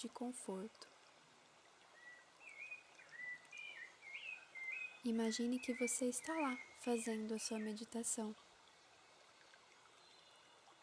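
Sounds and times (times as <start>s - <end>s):
speech: 0.0s - 0.9s, 5.0s - 8.5s
flowing water: 0.0s - 10.8s
thin whistling bird calls: 2.0s - 5.0s.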